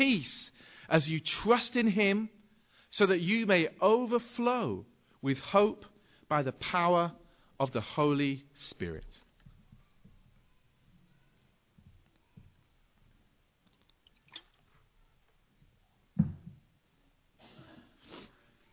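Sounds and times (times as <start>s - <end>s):
speech: 0.0s - 9.2s
soft water drips: 13.6s - 14.7s.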